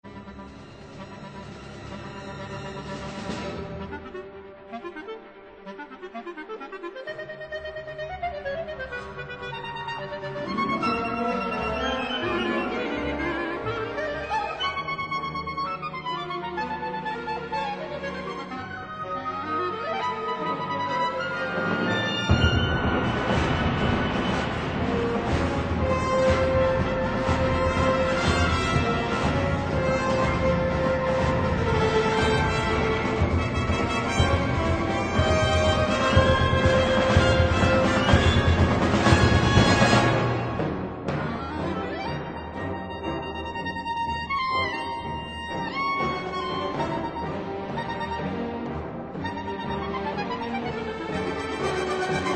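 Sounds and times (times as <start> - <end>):
clarinet concerto: 0.1 - 52.3.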